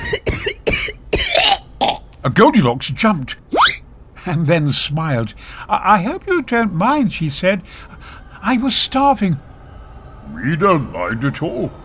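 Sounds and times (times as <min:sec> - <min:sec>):
raspy coughs: 0:00.0 - 0:02.0
person clearing throat: 0:00.0 - 0:02.1
speech: 0:02.2 - 0:03.6, 0:04.2 - 0:09.5, 0:10.3 - 0:11.8.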